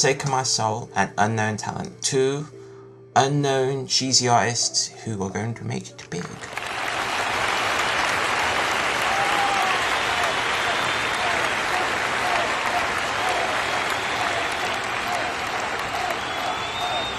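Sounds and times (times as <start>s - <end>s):
speech: 0.0s - 2.6s, 3.2s - 6.6s
crowd clapping: 6.4s - 17.1s.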